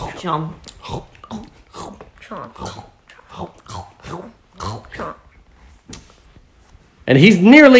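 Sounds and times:
person imitating a crocodile munching through a book page: 0.0 - 5.3
speech: 0.2 - 1.6, 2.3 - 4.2, 7.1 - 7.7.

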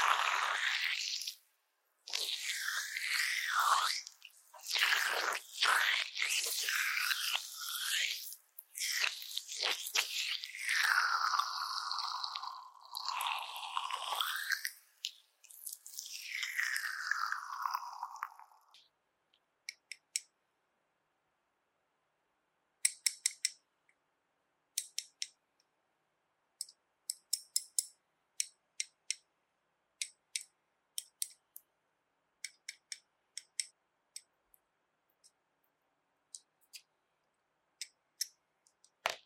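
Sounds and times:
slippery jelly squishing: 0.0 - 1.4, 2.0 - 18.8.

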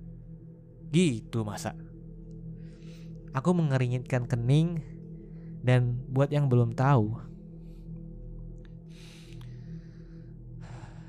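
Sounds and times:
steady low hum: 0.0 - 11.0
speech: 0.9 - 1.9, 3.4 - 4.9, 5.6 - 7.3
heavy ragged gasping breaths: 10.6 - 11.0.

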